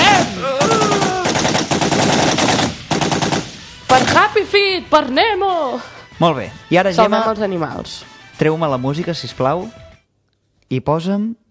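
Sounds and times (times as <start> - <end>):
automatic gunfire sound effect: 0.1 - 4.2
speech: 4.5 - 9.8, 10.7 - 11.4.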